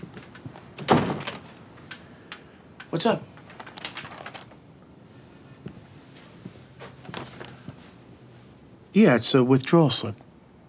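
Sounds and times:
door thudding shut: 0.8 - 1.5
speech: 2.9 - 3.3, 9.0 - 10.2.

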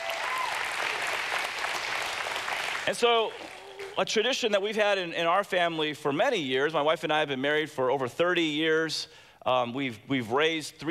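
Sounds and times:
crowd of many hands applauding: 0.0 - 4.0
speech: 2.9 - 10.8.

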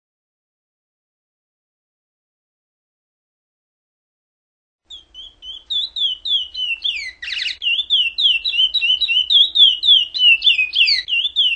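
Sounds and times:
chestnut-bellied seed finch song of clear high whistled notes: 4.9 - 11.5.

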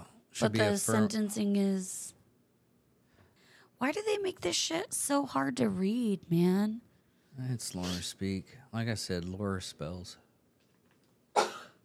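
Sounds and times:
speech: 0.4 - 2.2, 3.8 - 10.2
single sharp sneeze: 7.8 - 8.1, 11.4 - 11.8.

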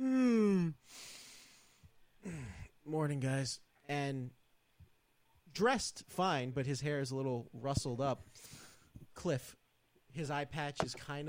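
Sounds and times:
person yawning: 0.0 - 0.9
speech: 2.9 - 4.4, 5.5 - 8.6, 9.2 - 11.2.

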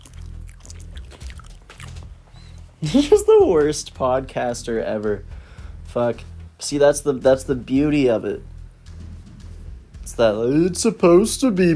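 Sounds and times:
mouth smacking and clicking: 0.0 - 2.7
wet gum chewing: 0.0 - 2.8
low hum: 0.0 - 10.8
speech: 2.8 - 5.3, 6.0 - 8.5, 10.2 - 11.7.

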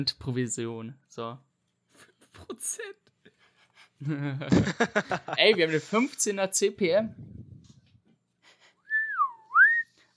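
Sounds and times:
speech: 0.0 - 3.1, 4.0 - 7.4
laughter: 2.0 - 6.0
clean human whistle gliding downward and swooping back up: 8.9 - 10.1.

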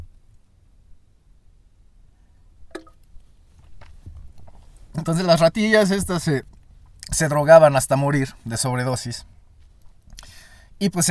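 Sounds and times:
sipping coffee: 2.7 - 3.1
speech: 5.0 - 6.5, 7.1 - 9.4, 10.8 - 11.0
wet mouth clicks: 10.1 - 10.3.

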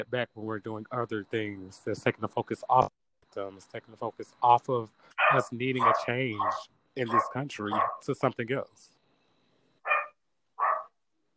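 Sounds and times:
speech: 0.0 - 8.9
dog barking downstairs: 5.2 - 8.0, 9.9 - 10.9.

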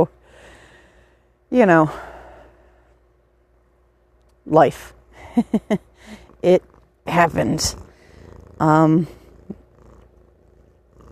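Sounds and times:
quiet room noise: 0.0 - 11.1
speech: 1.5 - 2.1, 4.5 - 7.9, 8.6 - 9.2
cat purring: 5.6 - 11.1.

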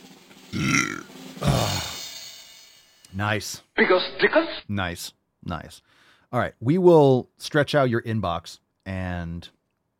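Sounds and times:
speech: 0.5 - 0.8, 3.2 - 9.6
loud throaty burp: 0.5 - 2.0.

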